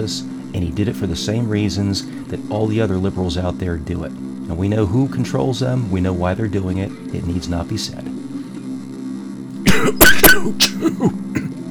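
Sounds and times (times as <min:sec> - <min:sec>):
speech: 0:00.0 - 0:08.1, 0:09.8 - 0:11.5
harsh coughing to clear something caught in the throat: 0:09.7 - 0:11.7
soft throat sounds: 0:09.7 - 0:11.7.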